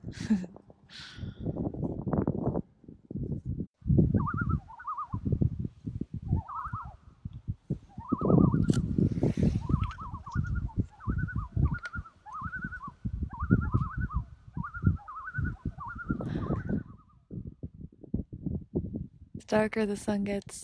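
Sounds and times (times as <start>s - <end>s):
low rumble of wind or handling noise: 0.0s - 20.6s
speech: 0.2s - 0.5s, 19.6s - 20.6s
loons calling: 4.2s - 5.3s, 6.3s - 7.2s, 7.9s - 17.3s.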